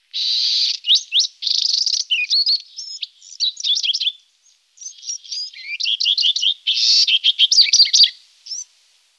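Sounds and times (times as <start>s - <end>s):
juvenile Bewick's wren calling: 0.1s - 8.7s.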